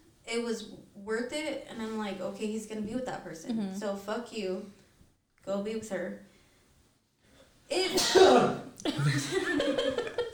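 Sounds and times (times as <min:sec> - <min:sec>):
speech: 0:00.3 - 0:04.8, 0:05.4 - 0:06.3, 0:07.7 - 0:10.1
person sneezing: 0:07.8 - 0:08.8.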